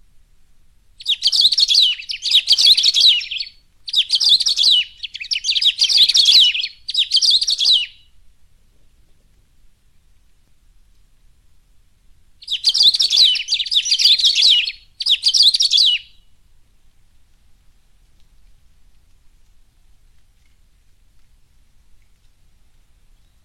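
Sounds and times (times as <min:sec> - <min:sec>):
saffron-billed sparrow song: 0:01.0 - 0:08.2, 0:12.4 - 0:16.3.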